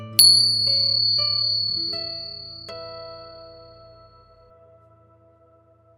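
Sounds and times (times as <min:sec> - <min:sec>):
soft resonant bell chimes: 0:00.2 - 0:04.0.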